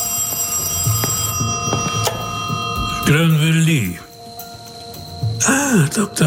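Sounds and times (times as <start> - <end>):
old-fashioned telephone bell ringing: 0.0 - 3.3
speech: 3.1 - 4.1, 5.4 - 6.2.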